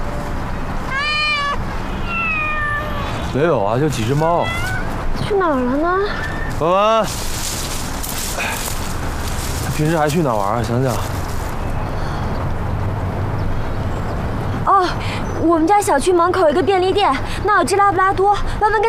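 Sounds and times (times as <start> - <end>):
steady outdoor hiss: 0.0 - 18.8
several cats meowing: 0.9 - 3.4, 4.0 - 5.1.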